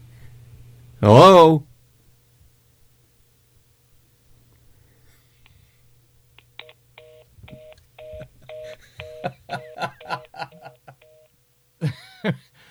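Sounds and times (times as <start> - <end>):
speech: 1.0 - 1.7, 12.2 - 12.4
electronic phone-line beeps after a call drops: 6.6 - 11.3.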